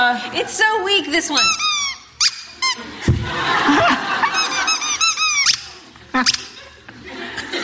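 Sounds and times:
speech: 0.2s - 1.8s, 6.2s - 6.4s
squeaky toy being squeezed: 1.3s - 2.9s, 4.3s - 6.6s
laughter: 2.6s - 7.6s.

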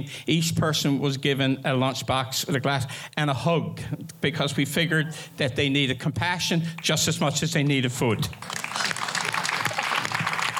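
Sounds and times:
speech: 0.0s - 8.6s
audience applause: 8.3s - 10.5s.

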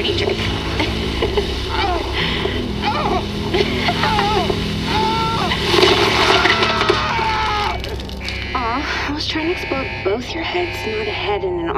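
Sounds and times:
indistinct voices: 0.0s - 11.7s
water spat out splattering onto a person's face and arm: 1.8s - 8.5s
speech: 9.3s - 11.7s.

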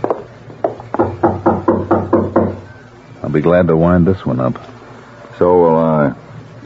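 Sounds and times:
knocking on a door: 0.0s - 2.7s
speech: 3.3s - 4.8s, 5.4s - 6.2s.

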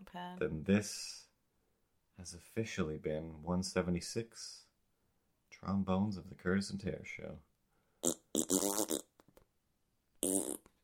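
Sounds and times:
speech: 0.2s - 1.2s, 2.2s - 4.6s, 5.6s - 9.0s
loud musical fart: 8.0s - 9.1s, 10.2s - 10.8s.

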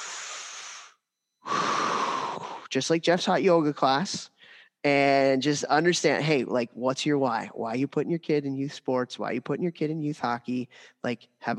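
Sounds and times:
person breathing deeply: 0.0s - 2.7s, 4.4s - 4.8s, 10.7s - 11.0s
speech: 2.7s - 11.5s.

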